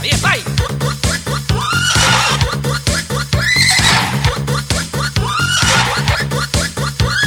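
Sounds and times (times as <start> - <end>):
pulsing 80s-style dance beat: 0.0 - 7.2
horse neighing in high shrill whinnies: 1.5 - 2.5, 3.4 - 4.4, 5.2 - 6.2.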